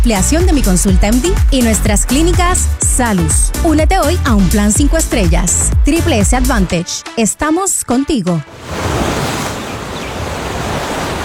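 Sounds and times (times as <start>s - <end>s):
speech: 0.0s - 8.9s
ocean waves washing against the shore: 8.4s - 11.2s.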